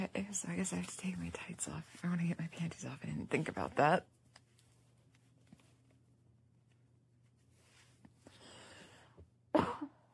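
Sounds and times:
speech: 0.0 - 4.2
soft rustling: 0.0 - 8.4
faint handling noises: 0.4 - 8.4
person coughing: 9.5 - 10.1.

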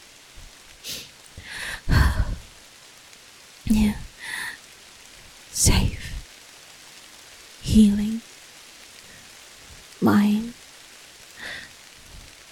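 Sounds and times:
rain falling: 0.0 - 12.5
person whispering: 0.9 - 2.4, 3.7 - 4.6, 5.6 - 6.2, 7.6 - 8.2, 10.0 - 10.6.

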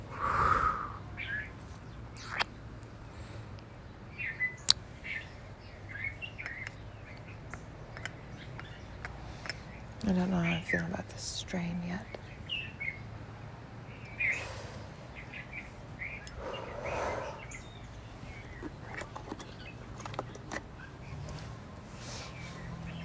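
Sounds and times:
steady low outdoor hum: 0.0 - 23.0
small bird singing in a plumeria tree: 0.4 - 2.7, 4.1 - 10.9, 13.9 - 21.6
speech: 10.2 - 12.3.

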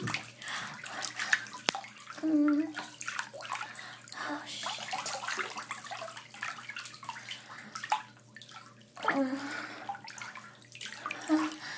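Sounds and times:
water sloshing and splashing in a bathtub: 0.0 - 11.7.

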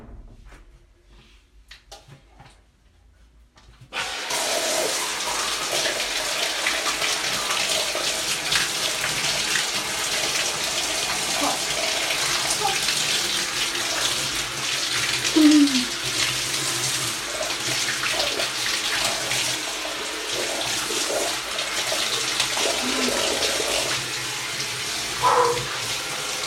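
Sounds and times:
cold shower water running: 3.9 - 26.4
person moaning: 15.4 - 15.9.

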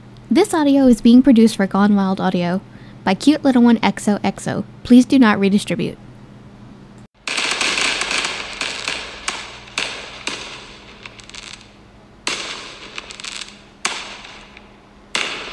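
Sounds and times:
speech: 0.3 - 6.0
fireworks exploding in loud crackling bursts: 7.2 - 15.5.

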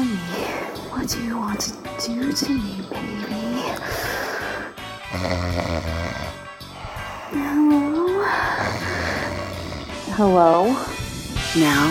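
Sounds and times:
speech: 1.0 - 4.2, 5.1 - 6.4, 7.3 - 9.3, 10.1 - 10.9, 11.6 - 11.8
man snoring loudly while asleep: 3.6 - 10.2.

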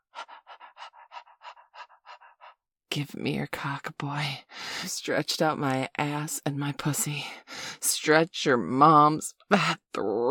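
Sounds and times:
person panting with tongue out: 0.0 - 2.6
speech: 2.9 - 7.4, 8.0 - 10.2.

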